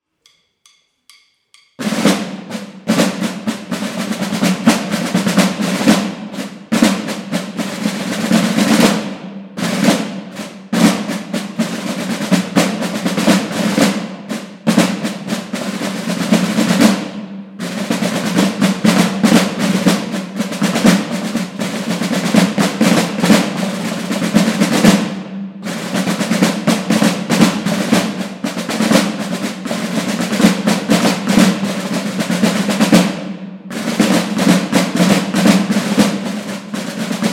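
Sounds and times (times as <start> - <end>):
silver drum: 0.2 - 37.3.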